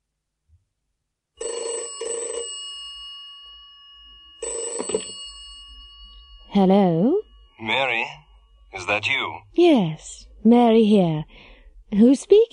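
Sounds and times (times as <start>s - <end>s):
telephone bell ringing in a classic double-ring pattern: 1.4s - 8.9s
speech: 6.6s - 12.5s.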